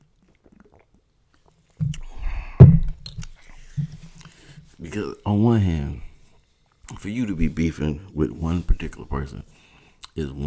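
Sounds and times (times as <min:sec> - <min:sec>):
person sipping a drink: 0:00.0 - 0:04.5
gulp: 0:00.2 - 0:03.5
speech: 0:04.8 - 0:06.0, 0:07.0 - 0:10.4.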